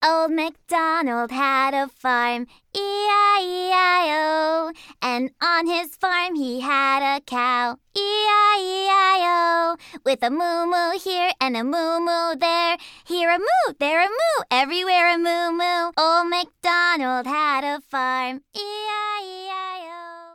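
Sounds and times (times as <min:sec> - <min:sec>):
English children's song: 0:00.0 - 0:20.3.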